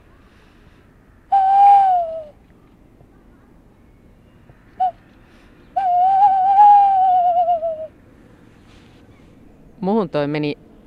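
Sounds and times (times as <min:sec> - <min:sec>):
person whistling an imitation of a calm tawny owl call: 0:01.3 - 0:02.4, 0:05.8 - 0:07.9
speech: 0:10.0 - 0:10.6.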